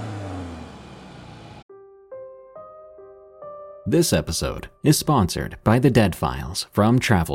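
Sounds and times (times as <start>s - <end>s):
abandoned car engine revving: 0.0s - 1.6s
speech: 3.9s - 7.3s.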